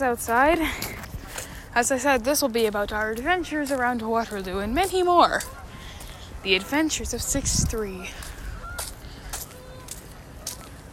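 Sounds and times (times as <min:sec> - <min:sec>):
speech: 0:00.0 - 0:01.0, 0:01.8 - 0:05.6, 0:06.4 - 0:08.3
geese honking outdoors: 0:05.0 - 0:10.8.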